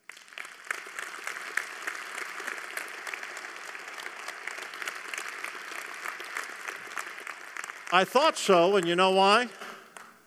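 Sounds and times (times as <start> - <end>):
crowd of people applauding and clapping: 0.0 - 10.2
speech: 7.9 - 9.6.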